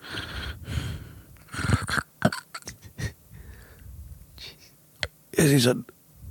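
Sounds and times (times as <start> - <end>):
person imitating sleep apnea breathing: 0.0 - 3.8
speech: 5.4 - 5.9.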